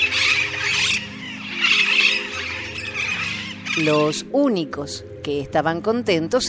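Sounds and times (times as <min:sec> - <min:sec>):
flock of parakeets screeching: 0:00.0 - 0:04.3
speech: 0:03.8 - 0:06.4.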